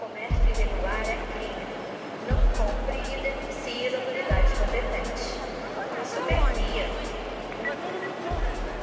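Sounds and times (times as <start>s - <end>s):
bustle at a busy train station: 0.0s - 8.8s
crowd chatter at a busy train station in Brazil: 0.0s - 8.8s
deep rhythmic thumps: 0.3s - 1.6s, 2.3s - 5.6s, 6.3s - 7.7s, 8.3s - 8.8s.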